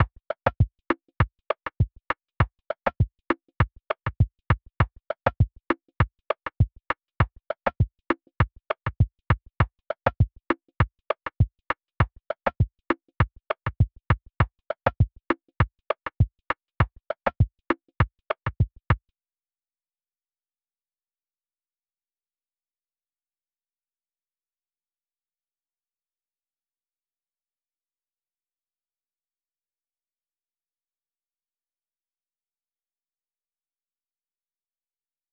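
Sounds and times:
100 BPM E minor Afrobeats percussion: 0.0s - 18.9s.

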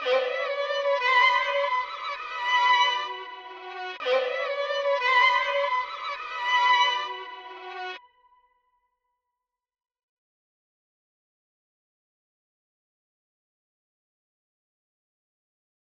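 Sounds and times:
120 BPM B minor reversed violin melody: 0.0s - 8.4s.

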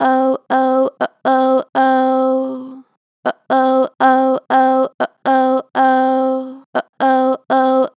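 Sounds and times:
person singing oh oh with strong natural vibrato: 0.0s - 7.9s.

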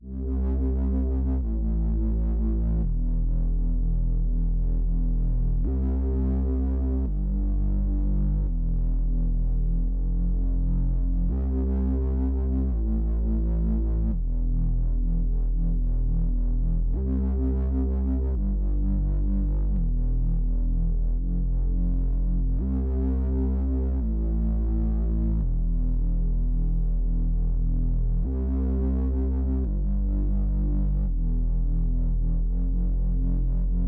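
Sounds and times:
bass loop in C minor at 85 BPM: 0.1s - 33.8s.

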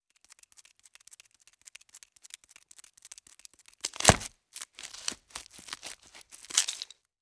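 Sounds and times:
spider scurrying: 3.8s - 7.0s.

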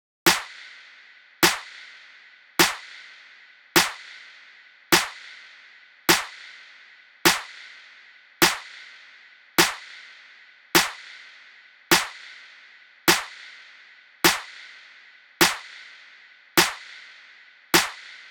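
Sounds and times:
drum loop with clap: 0.2s - 0.6s, 1.4s - 1.8s, 2.6s - 3.0s, 3.8s - 4.1s, 4.9s - 5.3s, 6.1s - 6.4s, 7.3s - 7.6s, 8.4s - 8.8s, 9.6s - 9.9s, 10.8s - 11.1s, 11.9s - 12.2s, 13.1s - 13.4s, 14.2s - 14.6s, 15.4s - 15.8s, 16.6s - 17.0s, 17.8s - 18.3s.

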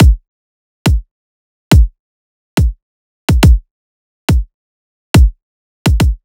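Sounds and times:
riddim kick drum loop: 0.0s - 0.2s, 1.7s - 1.9s, 2.6s - 3.6s, 4.3s - 4.5s, 5.2s - 6.2s.

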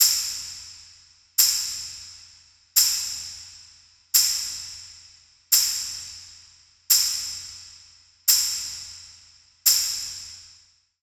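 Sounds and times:
tambourine loop in A minor: 0.0s - 10.8s.

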